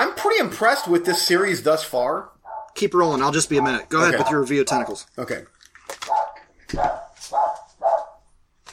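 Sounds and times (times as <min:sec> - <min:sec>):
speech: 0:00.4 - 0:05.6
dog barking: 0:00.7 - 0:01.6, 0:02.4 - 0:02.8, 0:03.5 - 0:05.0, 0:06.0 - 0:08.3.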